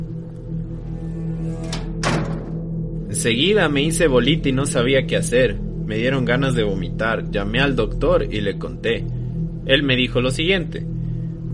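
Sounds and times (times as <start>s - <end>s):
steady low hum: 0.0s - 11.5s
door shutting with a dull thud: 1.7s - 2.8s
speech: 3.1s - 10.9s.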